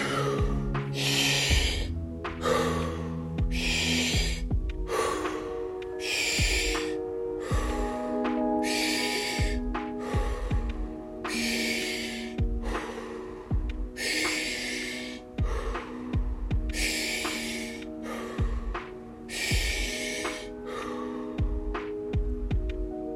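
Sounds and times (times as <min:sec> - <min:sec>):
deep breathing during a breathwork session: 0:00.0 - 0:23.0
sustained low tones: 0:00.0 - 0:23.1.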